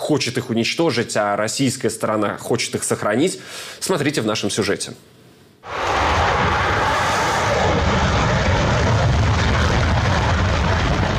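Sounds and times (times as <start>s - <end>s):
speech: 0.1s - 5.8s
Su-57 fighter jet roaring on takeoff: 5.6s - 11.1s.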